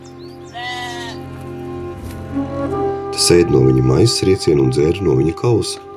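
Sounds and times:
lamb bleating: 0.5s - 1.3s
speech: 3.2s - 5.9s.

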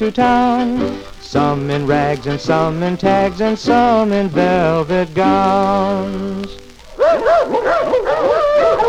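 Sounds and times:
speech: 0.0s - 7.6s
several dogs barking and yapping: 6.9s - 8.8s.

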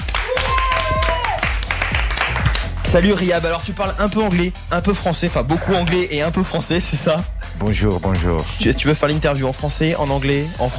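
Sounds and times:
applause for a DJ at a large electronic music festival in France: 0.0s - 3.0s
speech: 2.9s - 10.7s.

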